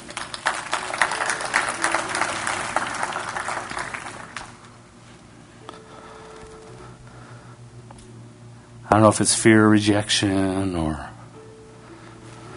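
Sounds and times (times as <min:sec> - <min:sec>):
audience applauding: 0:00.0 - 0:04.8
speech: 0:08.9 - 0:11.1.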